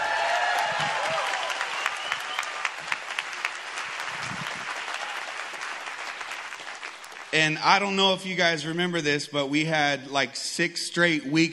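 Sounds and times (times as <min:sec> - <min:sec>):
church congregation applause during a service: 0:00.0 - 0:07.5
speech: 0:07.4 - 0:11.5.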